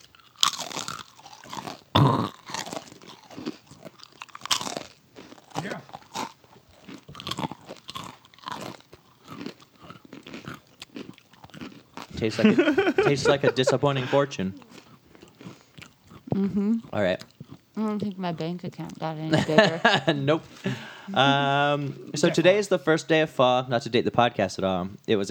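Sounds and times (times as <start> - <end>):
crunchy chewing of food: 0.0 - 18.2
speech: 12.2 - 14.6, 16.4 - 25.3
laughter: 12.2 - 14.8, 19.3 - 22.9.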